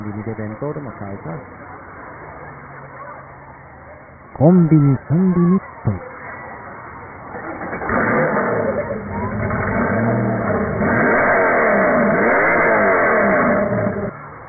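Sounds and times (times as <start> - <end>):
speech: 0.1 - 1.8, 4.4 - 6.1
Porsche sports car engine revving: 7.4 - 14.1.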